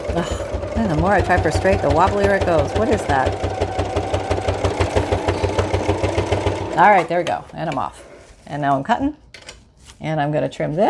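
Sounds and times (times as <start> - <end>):
sewing machine stitching fabric along a seam: 0.0 - 8.2
speech: 0.2 - 3.6, 6.8 - 9.2, 10.0 - 10.8.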